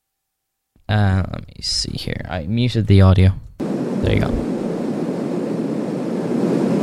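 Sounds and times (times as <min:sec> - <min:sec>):
speech: 0:00.9 - 0:04.5
recorded airplane engine noise: 0:03.6 - 0:06.8.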